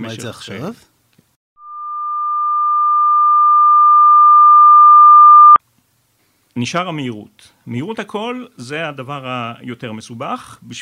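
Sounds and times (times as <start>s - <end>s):
speech: 0.0s - 0.9s, 6.6s - 10.8s
steady pure test tone: 1.6s - 5.6s.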